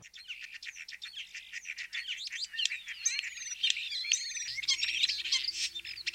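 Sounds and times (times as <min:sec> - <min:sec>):
European starling calling: 0:00.0 - 0:06.1.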